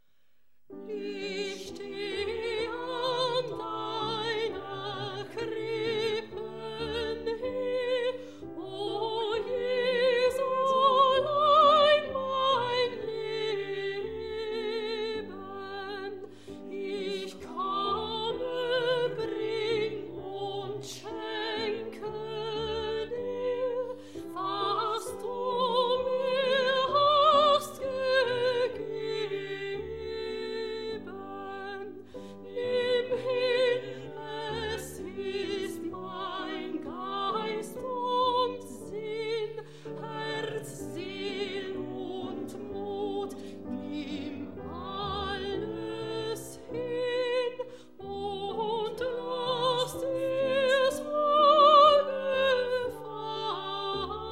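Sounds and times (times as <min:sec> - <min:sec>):
soprano singing: 0:00.7 - 0:54.3.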